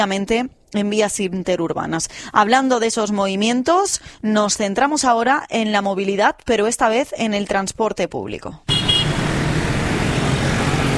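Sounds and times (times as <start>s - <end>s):
speech: 0.0s - 8.7s
cars and heavier vehicles rumbling past on a city street: 8.3s - 10.9s
faint horn-like tone: 8.7s - 9.2s.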